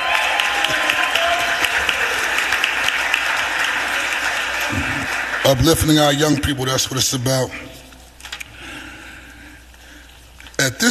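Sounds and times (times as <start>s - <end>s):
audience applause: 0.0s - 6.0s
speech: 5.5s - 7.7s.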